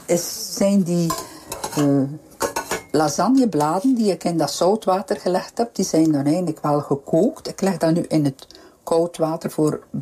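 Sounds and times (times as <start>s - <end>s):
stirring flour and butter in a pot: 0.0s - 4.2s
speech: 0.1s - 2.3s, 2.9s - 10.0s.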